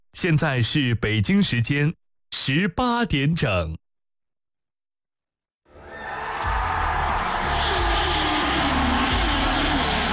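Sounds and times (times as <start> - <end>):
speech: 0.2 - 3.8
crowd cheering: 5.7 - 10.1
two racing car engines roaring: 6.8 - 10.1.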